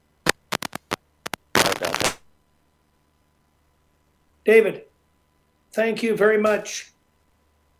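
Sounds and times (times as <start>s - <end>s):
crackling line static: 0.0s - 3.5s
speech: 4.4s - 4.9s, 5.8s - 6.9s.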